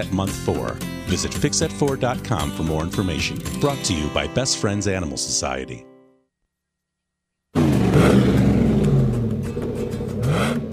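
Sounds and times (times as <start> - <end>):
speech: 0.0 - 5.9
truck engine with customized dual exhaust revving: 7.6 - 10.7.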